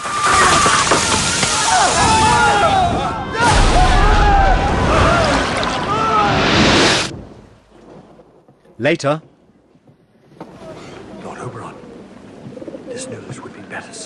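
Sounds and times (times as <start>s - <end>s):
magical water blast shooting from a staff: 0.0s - 7.8s
heavy low boom: 3.4s - 5.9s
speech: 8.8s - 9.3s.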